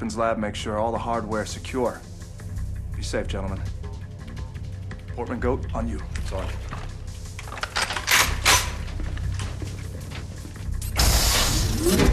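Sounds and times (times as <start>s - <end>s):
speech: 0.0s - 2.1s, 3.0s - 3.8s, 5.2s - 6.8s
sci-fi airlock door mechanical clanks and ratcheting: 7.2s - 12.0s.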